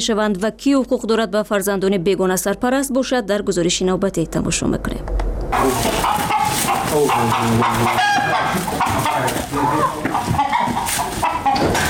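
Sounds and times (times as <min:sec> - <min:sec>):
speech: 0:00.0 - 0:06.2, 0:06.9 - 0:08.5
chickens clucking: 0:05.5 - 0:11.8
rooster crowing: 0:05.6 - 0:11.8.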